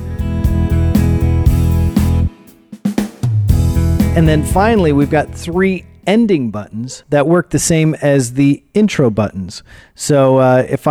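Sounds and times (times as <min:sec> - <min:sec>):
keyboard auto-accompaniment style pattern: 0:00.0 - 0:06.1
speech: 0:04.2 - 0:10.8.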